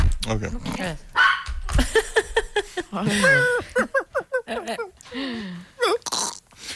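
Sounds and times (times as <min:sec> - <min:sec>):
speech: 0:00.3 - 0:01.1, 0:02.9 - 0:03.8, 0:04.5 - 0:06.0
dog barking and whining: 0:01.2 - 0:01.6
laughter: 0:01.7 - 0:05.0.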